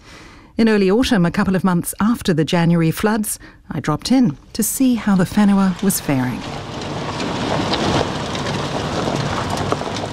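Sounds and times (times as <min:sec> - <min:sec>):
speech: 0:00.6 - 0:06.8
gusting wind: 0:05.0 - 0:10.1
light rain hiss: 0:05.7 - 0:10.1.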